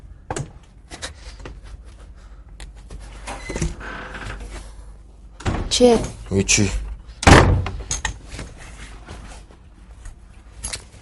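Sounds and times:
door being shut with a loud slamming thud: 0:05.4 - 0:06.2, 0:07.2 - 0:07.8
speech: 0:05.8 - 0:06.8.

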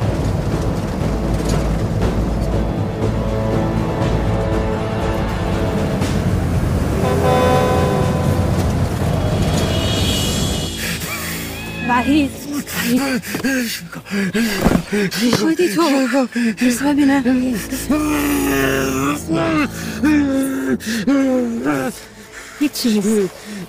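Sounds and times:
car engine roaring at full throttle: 0:00.0 - 0:11.6
dense road noise: 0:00.0 - 0:23.6
car horn honking: 0:07.0 - 0:12.0
speech: 0:12.1 - 0:23.6.

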